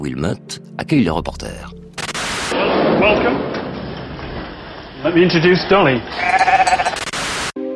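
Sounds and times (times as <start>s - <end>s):
speech: 0.0s - 1.8s, 2.5s - 3.6s, 5.0s - 6.5s
rough noise burst: 2.0s - 7.6s
sheep bleating with a long quavering bleat: 6.1s - 7.0s.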